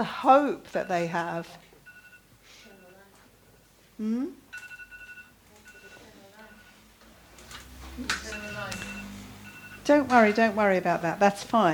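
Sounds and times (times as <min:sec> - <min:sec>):
speech: 0:00.0 - 0:01.7, 0:04.0 - 0:04.4, 0:09.9 - 0:11.7
electronic medication reminder alarm beeping: 0:01.8 - 0:03.2, 0:04.5 - 0:06.8, 0:08.2 - 0:10.2.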